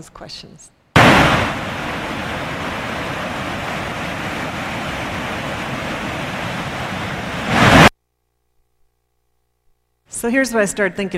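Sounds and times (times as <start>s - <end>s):
speech: 0.0s - 2.6s, 10.2s - 11.1s
waterfall roaring: 1.0s - 7.9s.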